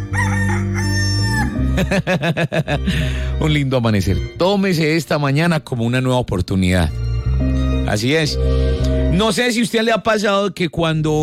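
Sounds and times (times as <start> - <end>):
rooster crowing: 0.0 - 1.6
laughter: 1.8 - 3.1
speech: 1.8 - 11.2.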